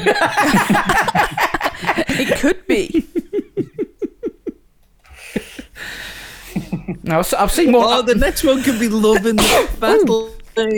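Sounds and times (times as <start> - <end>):
speech: 0.0 - 1.2, 2.4 - 3.2, 7.1 - 10.7
laughter: 0.0 - 10.3
person sneezing: 9.4 - 10.0.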